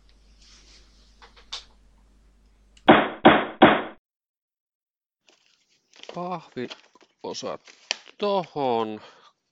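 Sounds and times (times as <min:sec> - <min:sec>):
soft rustles of board game boxes being packed: 0:00.3 - 0:01.3, 0:05.2 - 0:08.2
speech: 0:06.2 - 0:09.2.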